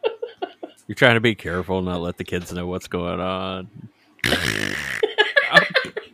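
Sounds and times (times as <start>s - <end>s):
speech: 0.9s - 3.8s
loud drawn-out buzzing fart: 4.2s - 5.2s
laughter: 5.0s - 6.1s.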